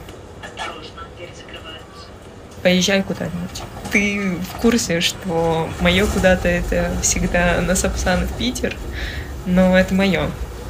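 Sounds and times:
rail noise inside a moving tram: 0:00.0 - 0:10.6
voice: 0:00.4 - 0:02.2
speech: 0:02.6 - 0:10.4.

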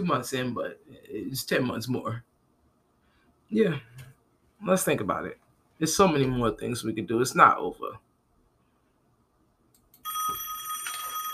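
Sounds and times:
speech: 0:00.0 - 0:02.3, 0:03.5 - 0:08.0
telephone bell ringing: 0:10.0 - 0:11.3.

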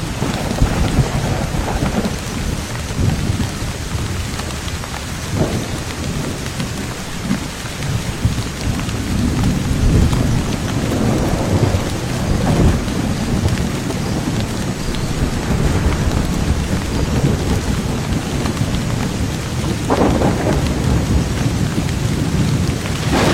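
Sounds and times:
dense rain on broad banana leaves in an orchard: 0:00.0 - 0:23.3
louder splashes: 0:23.0 - 0:23.3.

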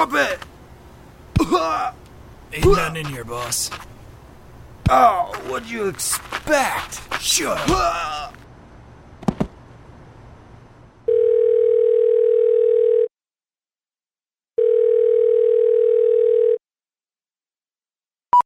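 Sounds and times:
speech: 0:00.0 - 0:00.5, 0:01.6 - 0:04.0, 0:04.9 - 0:08.4
telephone ringback tone: 0:11.1 - 0:13.1, 0:14.6 - 0:16.6.

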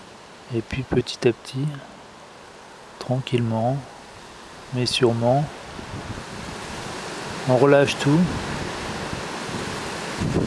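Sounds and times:
speech: 0:00.5 - 0:02.0, 0:03.0 - 0:03.9, 0:04.7 - 0:06.3, 0:07.4 - 0:08.5
wind blowing outdoors: 0:00.7 - 0:10.4.

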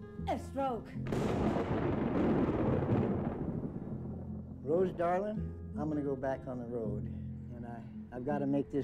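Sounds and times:
speech: 0:00.3 - 0:02.5, 0:04.7 - 0:08.8
rolling thunder from a lightning storm: 0:01.1 - 0:05.0.

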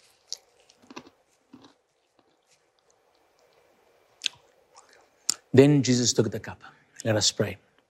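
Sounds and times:
chewing small piece of communion bread: 0:00.0 - 0:05.4
speech: 0:05.5 - 0:07.7.

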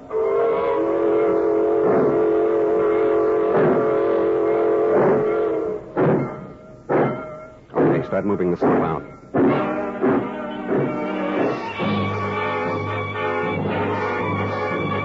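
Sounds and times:
freight train horn blast: 0:00.0 - 0:06.0, 0:09.4 - 0:15.0
freight rail cars clanking: 0:00.0 - 0:15.0
speech: 0:08.2 - 0:09.2.

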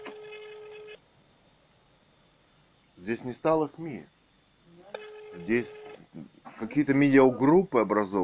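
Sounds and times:
single steady electronic telephone line beep: 0:00.0 - 0:01.0, 0:05.0 - 0:05.9
telephone line click as someone places a call: 0:00.0 - 0:01.0
speech: 0:03.0 - 0:04.2, 0:05.3 - 0:08.2.

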